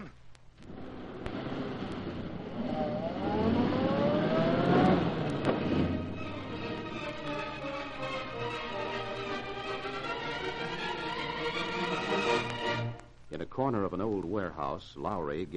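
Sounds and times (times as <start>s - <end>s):
car engine starting and accelerating: 0.6s - 12.6s
speech: 14.2s - 15.5s.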